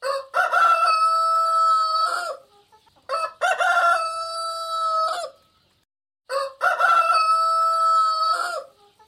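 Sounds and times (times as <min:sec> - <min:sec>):
rooster crowing: 0:00.0 - 0:02.4, 0:03.1 - 0:05.4, 0:06.3 - 0:08.8.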